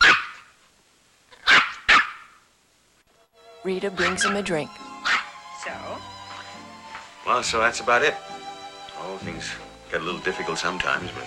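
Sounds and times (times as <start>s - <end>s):
toy poodle barking in an apartment: 0.0s - 0.5s, 1.3s - 2.4s, 4.0s - 5.4s
speech: 3.6s - 4.8s, 7.3s - 8.4s, 9.0s - 11.2s.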